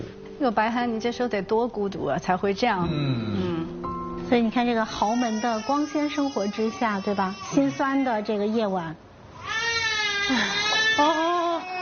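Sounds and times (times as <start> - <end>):
speech: 0.4 - 3.5, 4.3 - 9.0, 10.3 - 11.4
hungry baby crying loudly: 4.9 - 8.3, 9.4 - 11.8.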